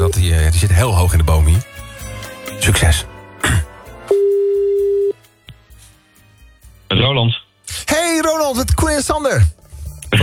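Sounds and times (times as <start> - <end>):
speech: 0.2 - 1.7, 2.6 - 3.6, 6.9 - 10.2
ringback tone of an outgoing telephone call: 4.1 - 5.2.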